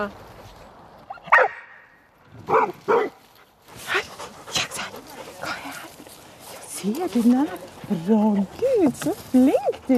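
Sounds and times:
speech: 0.0 - 0.3, 6.8 - 9.9
dog barking at a wooden man figure on a sled: 1.3 - 1.8, 2.5 - 3.2.

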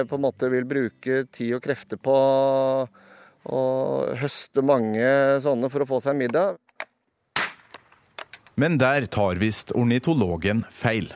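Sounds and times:
speech: 0.0 - 6.6, 8.6 - 11.1
small-bore rifle shots at a shooting range in Sørkedalen, Norway: 7.4 - 7.8.

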